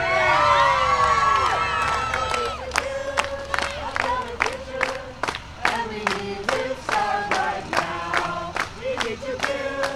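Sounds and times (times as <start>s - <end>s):
crowd of activists cheering and whooping in a park: 0.0s - 2.7s
excited shouts of activists: 0.0s - 2.7s
activists clapping: 1.3s - 9.9s.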